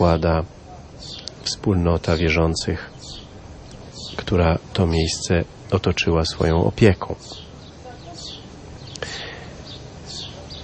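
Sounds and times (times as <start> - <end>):
speech: 0.0 - 2.9, 4.3 - 7.4
faint birds chirping in the evening: 0.0 - 10.6
low steady hum: 0.0 - 10.6.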